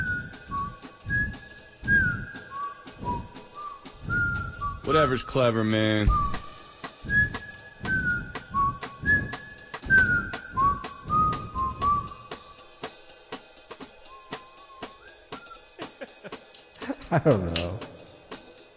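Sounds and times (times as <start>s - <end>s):
person whistling: 0.0s - 12.6s, 14.0s - 16.1s
steady fast clicking beat: 2.1s - 18.7s
speech: 4.9s - 6.3s, 17.2s - 17.9s
laughter: 15.6s - 18.0s.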